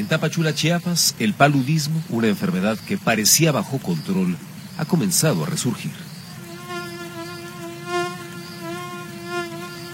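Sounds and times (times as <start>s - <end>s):
speech: 0.0s - 6.1s
mosquito whining and buzzing while hovering: 6.3s - 9.9s.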